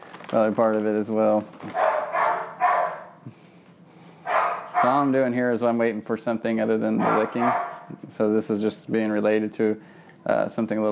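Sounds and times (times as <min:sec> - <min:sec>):
speech: 0:00.3 - 0:01.9, 0:04.8 - 0:10.9
dog barking excitedly: 0:01.7 - 0:03.2, 0:04.2 - 0:05.1, 0:07.0 - 0:07.9.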